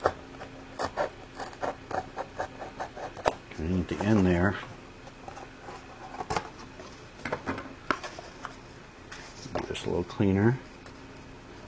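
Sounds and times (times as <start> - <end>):
X-Acto knife cutting out a square: 0.0 - 3.4
speech: 3.7 - 4.7, 9.9 - 10.7.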